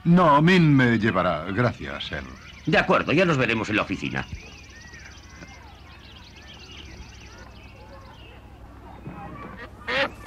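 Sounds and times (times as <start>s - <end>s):
speech: 0.0s - 4.5s
faint murmur: 0.0s - 10.2s
duck quacking: 9.6s - 10.2s.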